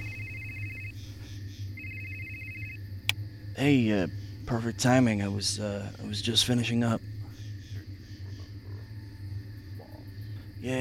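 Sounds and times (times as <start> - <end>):
phone ringing with a high warbling electronic trill: 0.0 - 1.1, 1.8 - 2.8
steady low hum: 0.0 - 10.7
speech: 3.6 - 7.0.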